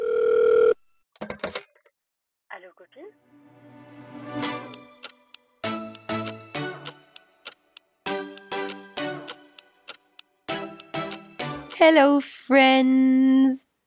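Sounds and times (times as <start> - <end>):
podcast intro instrumental jingle with bell-like tones: 3.2 - 7.4, 8.0 - 9.9, 10.5 - 11.9
ticking clock-like rhythm: 4.4 - 12.0
speech: 11.8 - 13.7.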